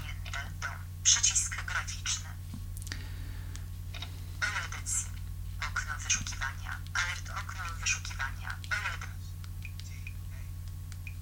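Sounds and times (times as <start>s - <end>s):
phone screen-reader voice echoing typed keys: 0.0s - 2.4s, 4.4s - 9.3s
low steady hum: 0.0s - 11.2s.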